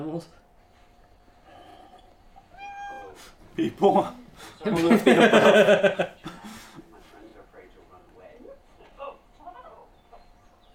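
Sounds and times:
speech: 0.1s - 0.4s, 3.2s - 6.2s
cat meowing in a drawn-out wavering cry: 1.6s - 3.3s
laughter: 4.6s - 6.9s.

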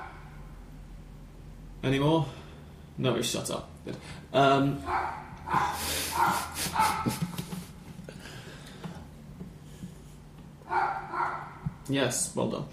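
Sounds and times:
low hum: 0.0s - 11.9s
speech: 1.8s - 2.4s, 3.0s - 7.2s, 11.9s - 12.7s
dog barking: 4.8s - 7.2s, 10.7s - 11.7s.

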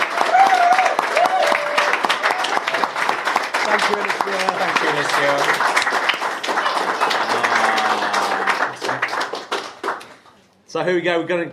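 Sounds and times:
audience applauding: 0.0s - 10.4s
faint voices or whoops in an audience: 0.2s - 2.7s
laughter: 3.6s - 5.6s, 6.7s - 9.2s
speech: 3.7s - 5.9s, 10.7s - 11.5s.

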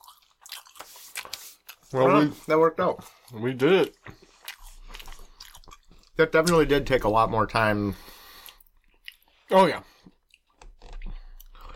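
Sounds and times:
wet chewing with soft crunchy bites: 0.0s - 7.1s, 8.0s - 11.7s
speech: 1.2s - 4.2s, 6.2s - 8.2s, 9.5s - 9.9s.

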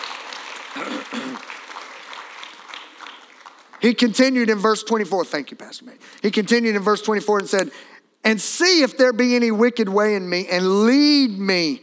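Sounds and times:
audience crowd clapping: 0.0s - 5.5s
speech: 0.8s - 1.5s, 3.8s - 11.8s.

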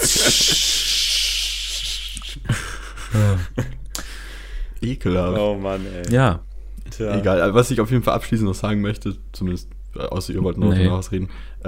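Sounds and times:
voice imitating the hiss of a steam bath opening at a thermal spa: 0.0s - 2.5s
laugh-like burst: 0.0s - 3.8s
speech: 0.3s - 0.8s, 4.8s - 11.6s.

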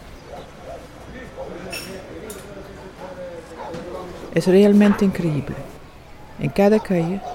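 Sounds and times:
murmur of voices on an outdoor café terrace: 0.0s - 7.3s
dishes and glassware clinking on an outdoor café terrace: 1.7s - 2.5s
speech: 4.4s - 5.7s, 6.4s - 7.3s.

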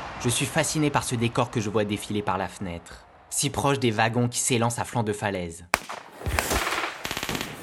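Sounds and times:
speech: 0.2s - 5.9s
rapid bursts of gunfire: 5.8s - 7.6s.

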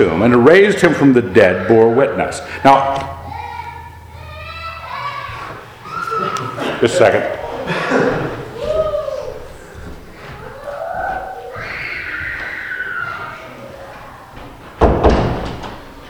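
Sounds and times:
speech: 0.0s - 3.2s, 6.8s - 8.1s
laughter: 5.8s - 9.8s
door slamming shut: 14.7s - 16.0s.

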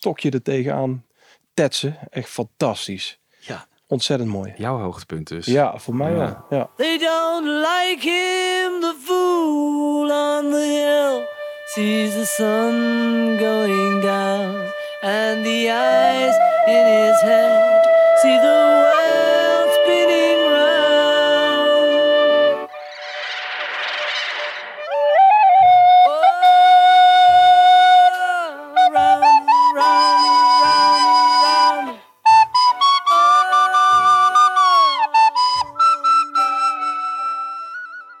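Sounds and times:
speech: 0.0s - 18.8s
airy flute-like melodic lines in a quiet pop song: 10.4s - 38.1s.

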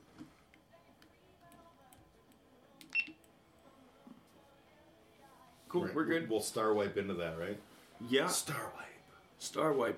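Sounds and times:
phone beep: 2.9s - 3.2s
speech: 5.7s - 9.9s.

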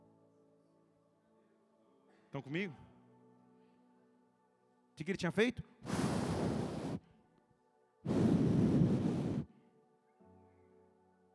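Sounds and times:
speech: 2.3s - 2.9s, 5.0s - 6.0s
strong roaring wind: 8.1s - 9.5s.

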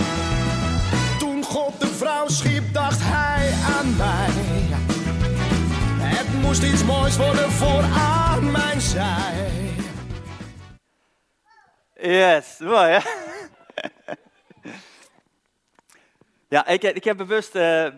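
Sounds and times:
Dutch-language pop song: 0.2s - 10.5s
speech: 12.3s - 13.2s, 16.5s - 17.9s
laughter: 12.7s - 15.0s.

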